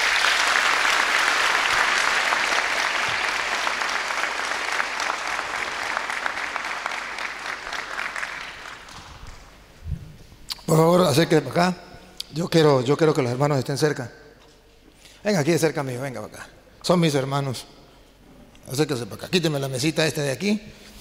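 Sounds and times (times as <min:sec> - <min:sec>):
audience applause at a debate event: 0:00.0 - 0:09.6
speech: 0:11.2 - 0:14.2, 0:15.2 - 0:17.8, 0:18.7 - 0:20.9.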